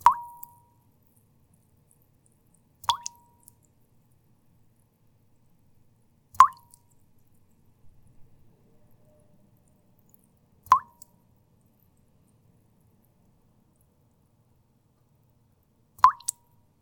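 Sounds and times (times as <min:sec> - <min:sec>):
water drops on a tea bowl: 0:00.0 - 0:00.9, 0:02.8 - 0:03.7, 0:06.3 - 0:07.0, 0:10.1 - 0:11.2, 0:16.0 - 0:16.6.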